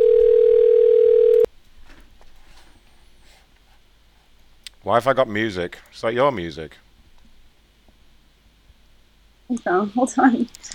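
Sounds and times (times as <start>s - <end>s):
telephone dial tone: 0.0s - 1.5s
faint noise: 1.4s - 10.7s
speech: 4.9s - 6.8s, 9.5s - 10.7s.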